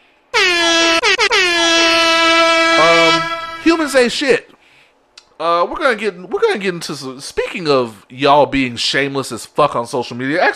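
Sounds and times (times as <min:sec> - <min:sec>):
air horn blasts: 0:00.4 - 0:04.1
speech: 0:04.0 - 0:04.6, 0:05.4 - 0:10.5.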